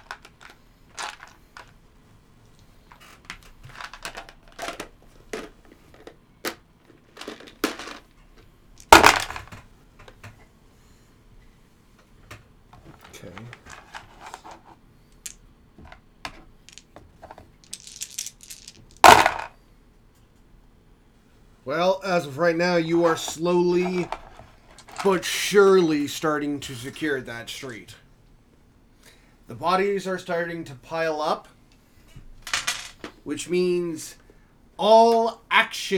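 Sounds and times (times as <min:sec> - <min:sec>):
dice being pulled rattling and clacking: 0:00.0 - 0:01.8, 0:03.6 - 0:08.0, 0:08.8 - 0:09.6, 0:13.4 - 0:19.5, 0:23.1 - 0:25.2, 0:32.5 - 0:33.2
speech: 0:21.7 - 0:24.2, 0:25.0 - 0:28.0, 0:29.6 - 0:31.5, 0:33.3 - 0:34.2, 0:34.8 - 0:35.9.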